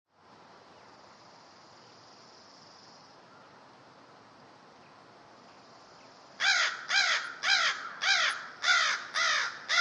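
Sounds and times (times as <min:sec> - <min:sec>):
crow giving loud hoarse caws: 0:06.4 - 0:09.7.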